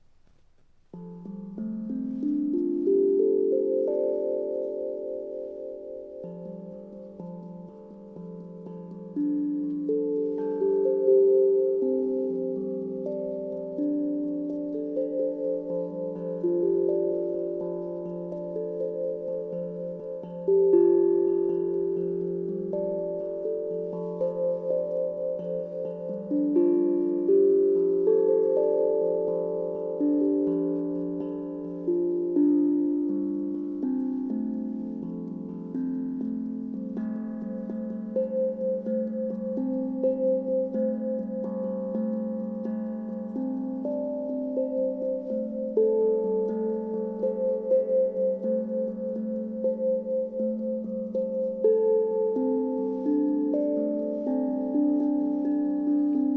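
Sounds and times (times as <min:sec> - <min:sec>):
F major pentatonic tones tuned to 440: 0:00.0 - 0:56.3.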